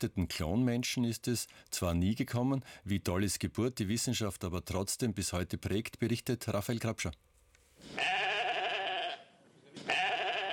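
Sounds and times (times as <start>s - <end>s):
speech: 0.0s - 8.2s
sheep bleating: 7.9s - 10.5s.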